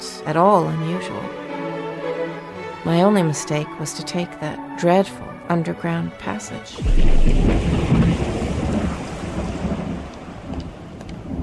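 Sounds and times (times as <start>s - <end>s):
speech: 0.2s - 1.4s, 2.8s - 8.0s
deep thunder rumbling low: 6.8s - 11.4s
steady rain pouring down: 6.8s - 11.4s.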